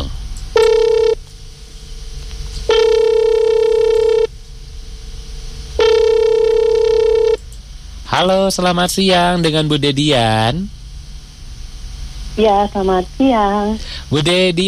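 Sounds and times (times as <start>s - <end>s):
ringback tone of an outgoing telephone call: 0.6s - 1.2s, 2.7s - 4.3s, 5.8s - 7.4s
speech: 8.2s - 10.8s, 12.4s - 14.6s.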